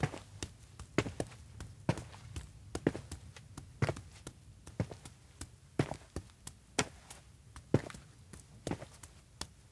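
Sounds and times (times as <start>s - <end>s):
footsteps walking on outdoor town road: 0.0s - 9.7s.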